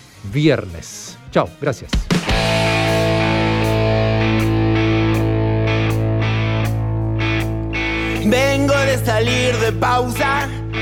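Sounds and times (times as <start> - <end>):
speech: 0.2 - 2.7, 8.3 - 10.6
steady drum hits in a rock song: 2.0 - 4.7
distorted electric guitar chord in a rock song: 2.3 - 10.7.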